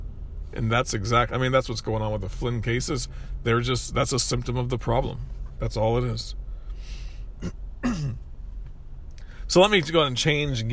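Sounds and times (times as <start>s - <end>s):
speech: 0.5s - 8.0s, 9.5s - 10.7s
raspy throat clearing: 7.4s - 8.2s.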